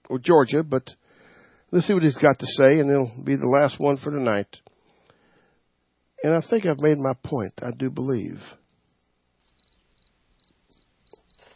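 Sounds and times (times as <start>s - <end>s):
quiet hiss: 0.0s - 11.5s
speech: 0.1s - 1.0s, 1.7s - 4.7s, 6.2s - 8.6s
crickets chirping: 9.0s - 11.5s.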